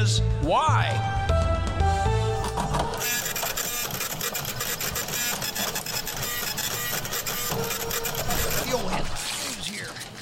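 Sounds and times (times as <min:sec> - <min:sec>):
speech: 0:00.0 - 0:01.2
printer running with whirring and clattering feed: 0:02.4 - 0:10.2.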